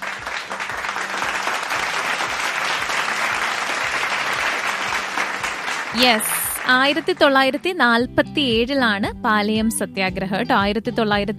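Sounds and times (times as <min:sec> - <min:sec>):
audience applause at a quiz event: 0:00.0 - 0:07.5
speech: 0:06.0 - 0:11.3.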